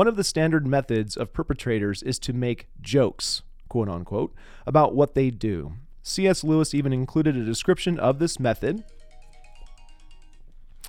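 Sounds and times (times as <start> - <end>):
speech: 0.0 - 9.0
phone ringtone with a repeating electronic tone pattern: 8.5 - 10.8.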